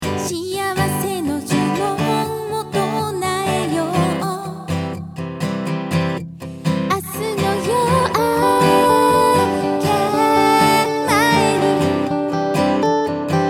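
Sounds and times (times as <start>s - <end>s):
acoustic guitar: 0.0s - 13.4s
person singing: 0.2s - 4.7s, 6.9s - 12.8s.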